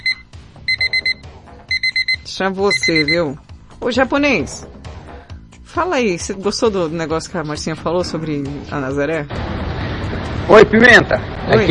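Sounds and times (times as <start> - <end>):
cheap alarm clock ringing with shrill electronic beeps: 0.0 - 3.4
speech: 2.3 - 4.8, 5.8 - 9.6, 10.5 - 11.6.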